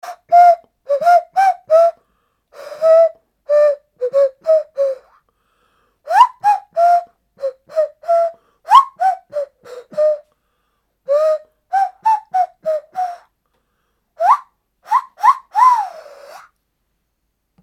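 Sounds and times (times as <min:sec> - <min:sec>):
nose flute: 0:00.0 - 0:02.0, 0:02.6 - 0:05.2, 0:06.1 - 0:10.4, 0:11.1 - 0:13.3, 0:14.2 - 0:16.6.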